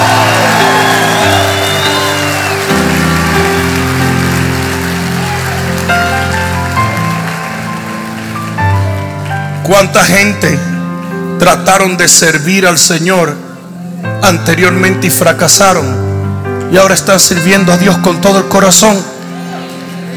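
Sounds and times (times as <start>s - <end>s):
audience shouting praise to the Lord: 0.0s - 3.7s
organ-like keyboard chords: 0.0s - 20.1s
speech: 9.7s - 10.8s, 11.4s - 13.5s, 14.2s - 19.2s.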